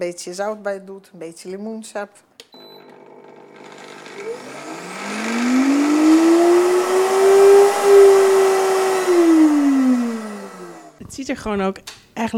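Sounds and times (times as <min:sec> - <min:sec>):
speech: 0:00.0 - 0:02.5, 0:11.2 - 0:12.3
blender motor whirring, churning thick soaked nuts into a cream cheese-like spread: 0:02.7 - 0:11.0.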